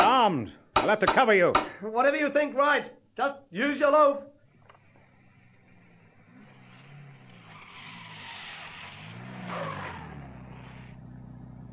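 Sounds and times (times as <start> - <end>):
speech: 0.2 - 4.3
car engine approaching: 4.5 - 11.7.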